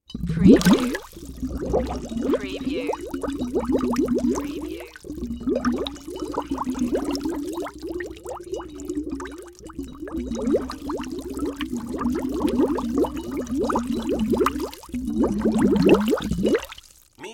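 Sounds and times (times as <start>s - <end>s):
tank bubbles: 0.0s - 17.2s.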